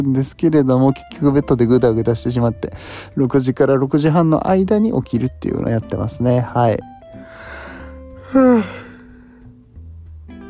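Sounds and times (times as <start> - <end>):
speech: 0.0 - 7.6, 8.3 - 8.8
person yawning with a breathy voiced groan: 7.3 - 9.1.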